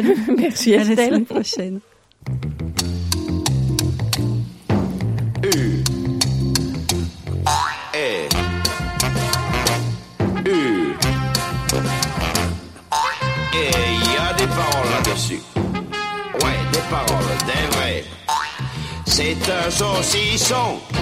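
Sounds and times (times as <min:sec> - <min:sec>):
laughter: 0:00.0 - 0:01.8
speech: 0:00.0 - 0:02.6, 0:19.2 - 0:21.0
plucky rhythmic accompaniment: 0:02.2 - 0:10.0, 0:11.0 - 0:15.3, 0:16.2 - 0:18.2
bouncy upbeat intro of a comic French song: 0:07.4 - 0:21.0.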